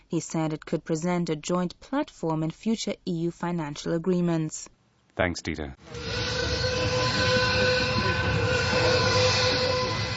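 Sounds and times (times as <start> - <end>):
speech: 0.1 - 7.3
recreated sound of a train rolling by: 5.8 - 10.1
high whistle-like tones of a recreated train: 5.9 - 10.1.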